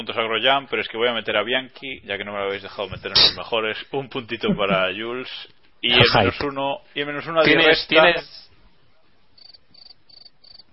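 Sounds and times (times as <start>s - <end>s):
speech: 0.0s - 8.5s
quiet steady hiss: 0.0s - 10.7s
laughter: 4.3s - 5.0s, 5.9s - 6.4s
crickets chirping: 9.4s - 10.7s.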